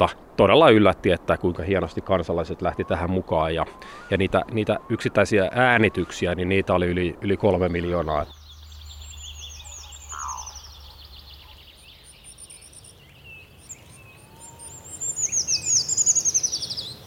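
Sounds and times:
speech: 0:00.0 - 0:08.4
birds singing outdoors: 0:01.6 - 0:17.0.

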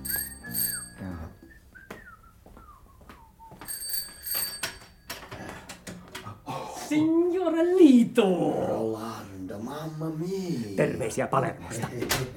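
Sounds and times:
small shrill office doorbell ringing: 0:00.0 - 0:01.5, 0:03.7 - 0:05.5
speech: 0:06.9 - 0:09.2, 0:09.9 - 0:12.3.

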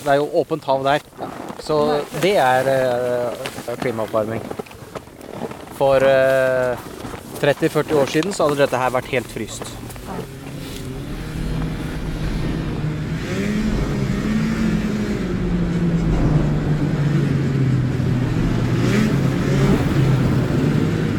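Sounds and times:
speech: 0:00.0 - 0:04.6, 0:05.8 - 0:10.3
vehicle speeding on Svalbard in bad weather: 0:08.0 - 0:21.1.

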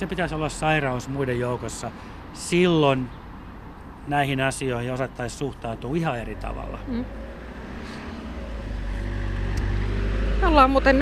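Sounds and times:
speech: 0:00.0 - 0:03.2, 0:04.0 - 0:07.2, 0:10.4 - 0:11.0
car driving past: 0:05.2 - 0:11.0.

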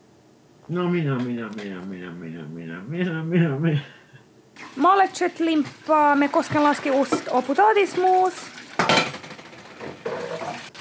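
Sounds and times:
speech: 0:00.7 - 0:04.0, 0:04.8 - 0:09.0
dishes and cutlery clattering: 0:07.0 - 0:10.7.

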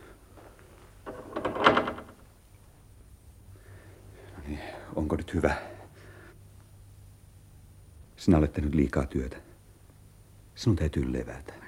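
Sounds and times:
door being pushed shut and locked: 0:01.0 - 0:02.2
speech: 0:05.0 - 0:05.7, 0:08.2 - 0:09.5, 0:10.6 - 0:11.6.

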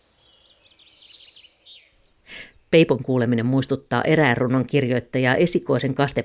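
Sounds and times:
white wagtail twittering song: 0:00.0 - 0:02.8
speech: 0:02.7 - 0:06.2.

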